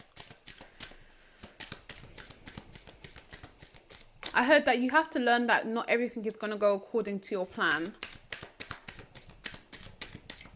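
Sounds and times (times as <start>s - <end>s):
oracle cards being shuffled for a card reading: 0.0s - 4.4s, 7.6s - 10.5s
speech: 4.4s - 8.0s.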